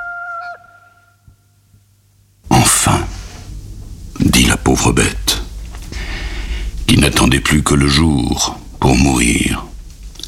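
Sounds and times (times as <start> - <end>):
hoarse rooster crowing from a farm: 0.0 - 1.3
faint lingering hum: 0.0 - 10.2
speech: 2.9 - 3.1, 4.7 - 5.4, 6.9 - 9.7.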